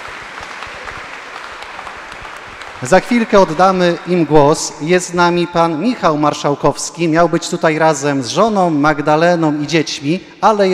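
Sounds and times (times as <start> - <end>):
audience applause at a live event: 0.0 - 4.5
speech: 2.8 - 10.7.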